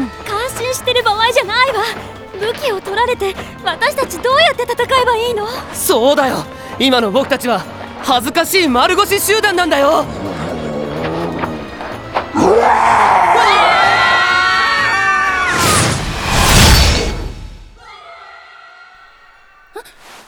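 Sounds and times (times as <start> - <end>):
speech: 0.7 - 10.3
group of people screaming: 9.1 - 16.6, 17.8 - 19.0.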